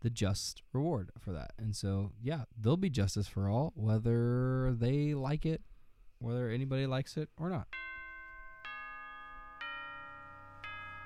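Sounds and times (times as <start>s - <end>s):
speech: 0.0s - 7.9s
bell chiming: 7.7s - 11.0s.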